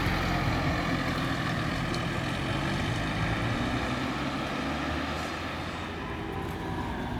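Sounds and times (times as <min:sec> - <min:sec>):
bus engine rumbling as it passes: 0:00.0 - 0:07.1.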